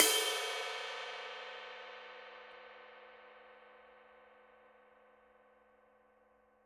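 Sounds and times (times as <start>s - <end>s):
dark crash ride cymbal: 0.0s - 1.6s.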